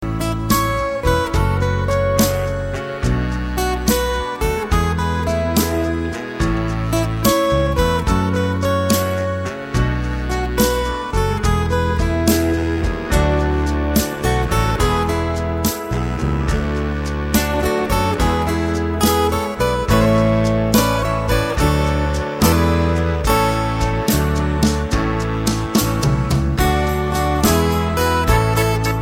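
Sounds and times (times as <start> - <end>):
country guitar playing: 0.0 - 29.0.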